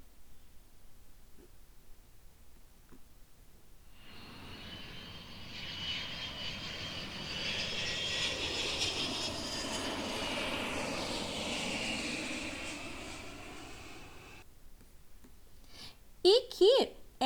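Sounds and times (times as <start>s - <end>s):
airplane engine roaring with a high whine: 4.0s - 14.4s.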